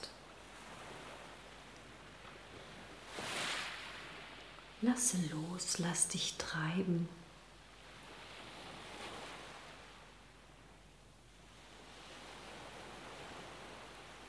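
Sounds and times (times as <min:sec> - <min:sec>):
ocean surf washing onto the shore: 0:00.0 - 0:05.8, 0:07.5 - 0:10.4, 0:11.4 - 0:14.2
speech: 0:04.8 - 0:07.2.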